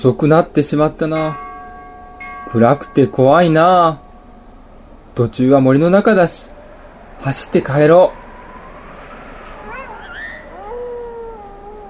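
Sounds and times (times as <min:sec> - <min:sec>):
speech: 0:00.0 - 0:01.5, 0:02.5 - 0:04.0, 0:05.2 - 0:06.5, 0:07.2 - 0:08.2
steady hiss of noise: 0:00.0 - 0:09.7
single wolf howling: 0:09.4 - 0:11.8.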